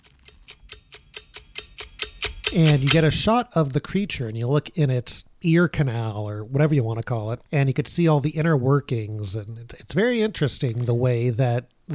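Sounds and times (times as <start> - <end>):
kitchen timer ticking: 0.0 - 3.2
speech: 2.5 - 11.9.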